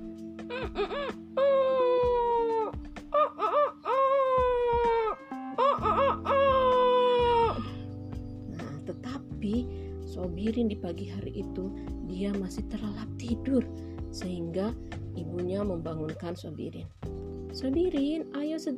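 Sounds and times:
speech: 0.5 - 1.2, 10.8 - 18.7
rooster crowing in its coop: 0.6 - 7.8
quieter clucking: 3.2 - 7.4.

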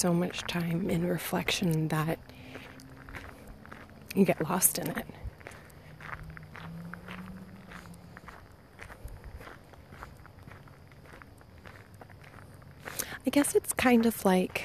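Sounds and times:
speech: 0.0 - 2.6, 4.1 - 5.2, 13.2 - 14.6
footsteps of someone walking in the dark: 0.0 - 14.6.

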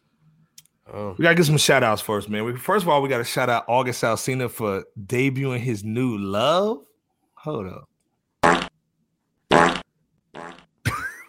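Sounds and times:
speech: 0.9 - 7.9
fart sound effects: 8.4 - 8.7, 9.5 - 10.7.

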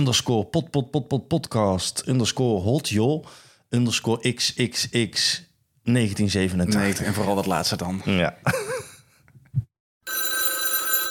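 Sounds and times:
speech: 0.0 - 8.8
telephone ringing with sustained metallic bell: 10.0 - 11.0.

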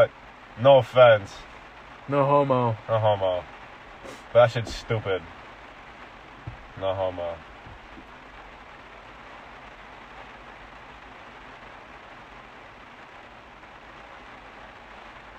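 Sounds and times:
speech: 0.0 - 1.5, 2.1 - 5.4, 6.8 - 7.5
rain falling outside: 0.0 - 15.3.

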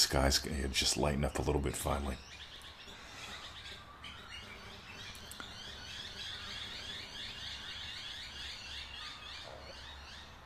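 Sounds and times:
speech: 0.0 - 2.4
dense chorus of birds singing at dawn: 0.0 - 10.4.

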